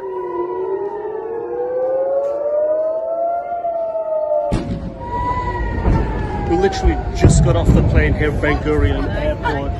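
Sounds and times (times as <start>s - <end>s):
air raid siren wailing over an airport: 0.0s - 9.7s
burst of rumbling broadband noise: 4.5s - 9.7s
speech: 6.6s - 9.7s.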